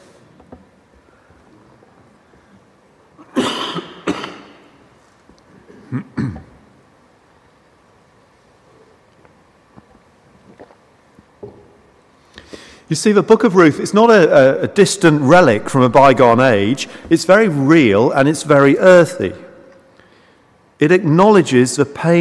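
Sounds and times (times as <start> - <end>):
faint hiss: 0.0 - 22.1
person clearing throat: 3.2 - 4.6, 5.7 - 6.6
person coughing harshly: 3.2 - 4.6, 5.7 - 6.6
speech: 12.9 - 19.4, 20.8 - 22.1.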